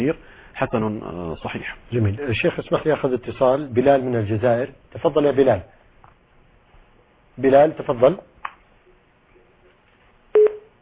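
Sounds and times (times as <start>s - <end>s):
speech: 0.0s - 5.8s, 7.4s - 8.3s
short electronic tone on a phone line as the call cuts off: 10.3s - 10.8s
brief clicks on a phone line: 10.4s - 10.7s.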